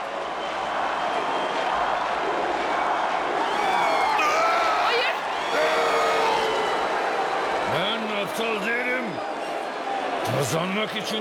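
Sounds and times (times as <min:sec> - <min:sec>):
large arena crowd cheering for a boxer: 0:00.0 - 0:11.1
speech: 0:10.5 - 0:11.1.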